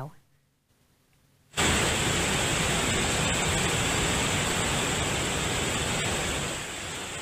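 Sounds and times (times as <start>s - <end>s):
speech: 0.0s - 0.2s
powerful flooded waterfall roaring: 1.6s - 7.2s.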